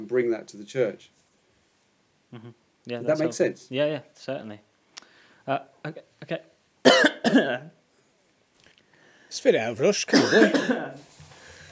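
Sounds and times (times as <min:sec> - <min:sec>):
speech: 0:00.0 - 0:01.2, 0:02.3 - 0:04.7, 0:05.5 - 0:07.8, 0:09.3 - 0:11.1
person coughing: 0:06.9 - 0:07.6, 0:10.1 - 0:11.0.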